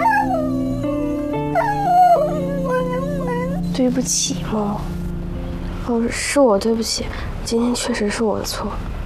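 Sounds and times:
dog found on the road whimpering and yipping: 0.0s - 3.8s
steady tonal musical background: 0.0s - 7.5s
speech: 3.8s - 5.0s, 5.9s - 8.9s.

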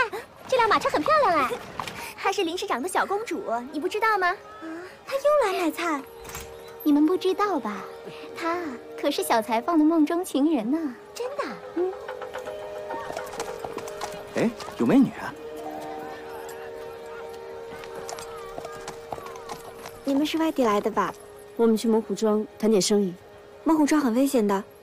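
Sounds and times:
people talking: 0.0s - 1.6s, 2.2s - 6.0s, 6.8s - 12.0s, 16.3s - 24.7s
horse-drawn carriage hooves clip-clopping: 0.4s - 2.7s, 11.8s - 21.5s.

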